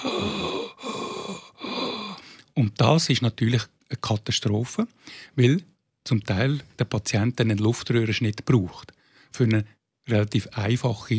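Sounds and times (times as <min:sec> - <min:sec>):
person imitating labored, wheezing breathing of respiratory distress: 0:00.0 - 0:02.4
speech: 0:02.6 - 0:11.1.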